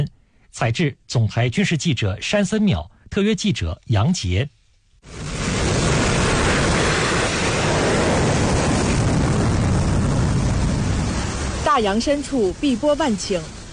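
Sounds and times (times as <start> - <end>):
speech: 0.0 - 5.3, 11.8 - 13.6
carrier-based fighter jet engine roaring on an aircraft carrier's flight deck: 5.1 - 13.7.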